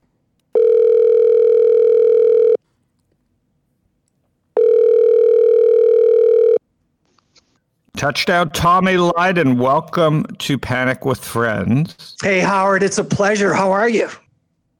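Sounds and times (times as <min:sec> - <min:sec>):
telephone tones while placing a call: 0:00.5 - 0:02.6, 0:04.6 - 0:06.6
speech: 0:08.0 - 0:14.2.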